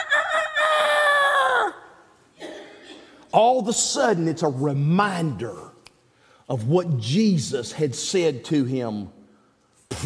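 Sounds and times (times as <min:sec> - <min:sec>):
rooster crowing: 0:00.0 - 0:01.8
speech: 0:03.3 - 0:05.7, 0:06.5 - 0:09.2.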